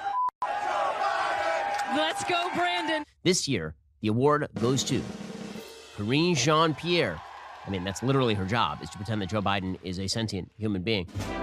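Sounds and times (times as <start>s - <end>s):
large crowd chanting loudly in unison: 0.0s - 2.9s
speech: 1.9s - 5.2s, 6.0s - 11.4s.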